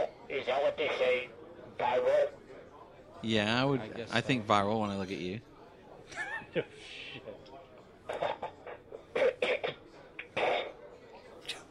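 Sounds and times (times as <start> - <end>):
speech: 0.3 - 2.4, 3.2 - 5.5, 6.1 - 7.4
throat clearing: 8.2 - 10.8
rough coughing: 9.2 - 10.7.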